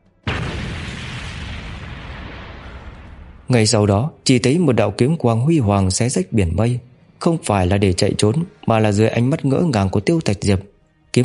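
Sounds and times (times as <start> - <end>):
loud explosion with long broad rumble: 0.2 - 3.9
speech: 3.5 - 11.2.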